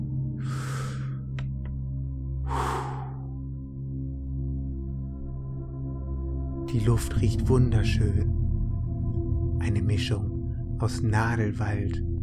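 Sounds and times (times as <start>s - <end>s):
steady low drone: 0.0s - 12.2s
deep breath in and slow breath out: 0.4s - 1.4s, 2.4s - 3.6s
speech: 6.7s - 8.4s, 9.6s - 12.1s.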